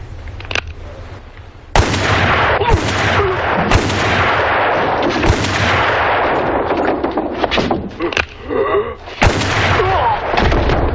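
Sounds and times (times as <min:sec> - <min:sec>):
continuous noise: 0:00.0 - 0:10.9
gunshots with rumbling decay: 0:01.8 - 0:07.9, 0:09.2 - 0:10.9.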